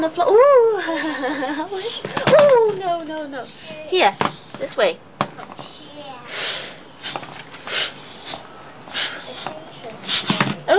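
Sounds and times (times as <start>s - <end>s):
speech: 0.0s - 5.8s
laughter: 0.7s - 2.4s
hand pump puffing air: 6.3s - 10.6s.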